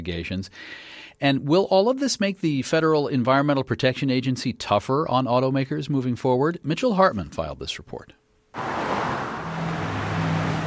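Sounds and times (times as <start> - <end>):
speech: 0.0 - 8.2
cars whizzing by on a highway: 8.6 - 10.6.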